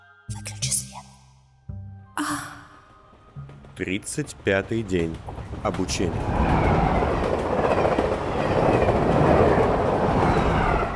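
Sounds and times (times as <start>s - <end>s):
train carriage passing by a window with dense wheel clatter: 2.9s - 10.9s
speech: 3.8s - 6.6s.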